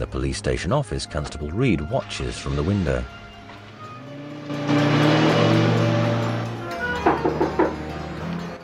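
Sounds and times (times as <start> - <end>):
speech: 0.0 - 3.2
car engine accelerating and revving as it speeds down a road: 2.7 - 8.6.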